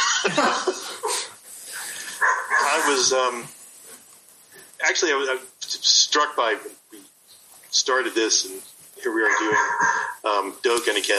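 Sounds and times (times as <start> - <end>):
laughter: 0.0 - 1.4
speech: 0.2 - 1.2, 2.8 - 3.6, 4.8 - 6.8, 7.7 - 11.1
group conversation: 1.5 - 4.8, 8.7 - 11.1
dog barking and yelping: 2.2 - 3.1, 9.2 - 10.2
dog whiny drawn-out cries: 9.2 - 10.2.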